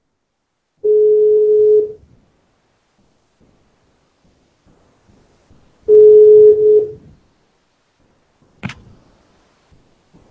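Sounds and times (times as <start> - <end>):
telephone ringback tones after dialing extension: 0.8 - 2.0, 5.9 - 7.0.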